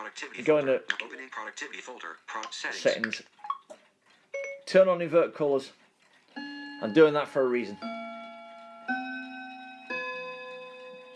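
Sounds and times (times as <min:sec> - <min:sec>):
speech: 0:00.1 - 0:03.4, 0:04.7 - 0:05.8, 0:06.8 - 0:07.9
clock chiming: 0:06.4 - 0:11.1.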